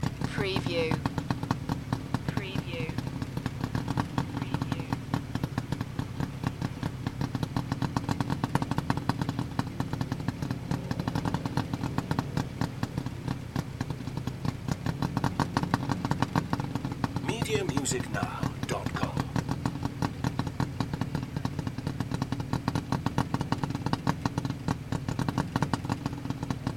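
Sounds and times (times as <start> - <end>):
tuk-tuk engine idling: 0.0 - 26.7.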